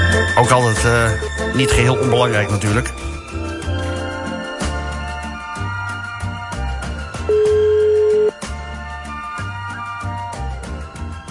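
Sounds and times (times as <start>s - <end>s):
music: 0.0s - 11.3s
speech: 0.5s - 3.2s
telephone ringback tone after dialing a number: 7.3s - 8.4s.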